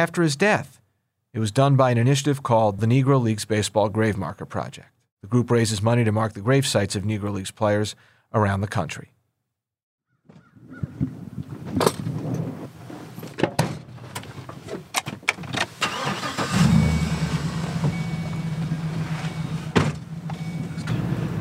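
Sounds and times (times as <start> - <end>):
speech: 0.0 - 9.2, 10.3 - 11.9
clunks and rattles of people getting into a pickup truck: 10.3 - 21.3
pickup truck engine starting and rumbling idle as it pulls away: 14.3 - 21.3.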